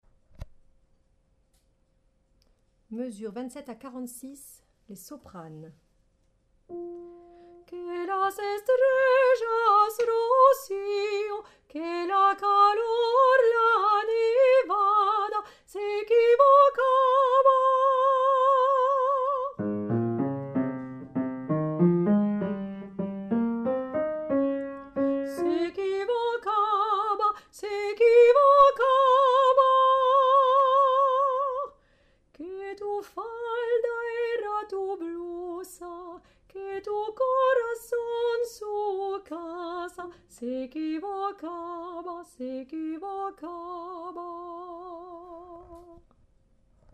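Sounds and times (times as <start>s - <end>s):
soprano singing: 6.7s - 31.8s, 32.4s - 46.0s.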